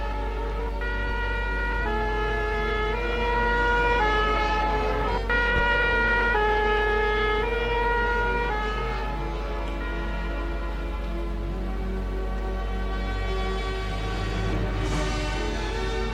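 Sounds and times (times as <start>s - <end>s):
fire engine low engine rumble: 0.0s - 16.1s
fire engine two-tone siren wailing: 0.0s - 16.1s.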